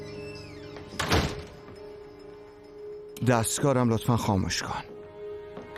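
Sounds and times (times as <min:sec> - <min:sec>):
door swinging shut with a solid thunk: 0:00.8 - 0:01.7
speech: 0:03.2 - 0:04.9.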